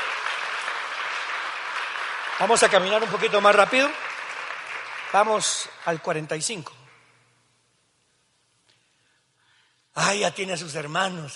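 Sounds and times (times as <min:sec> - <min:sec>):
large audience applauding loudly: 0:00.0 - 0:06.5
speech: 0:02.4 - 0:04.1, 0:05.1 - 0:06.8, 0:10.0 - 0:11.3.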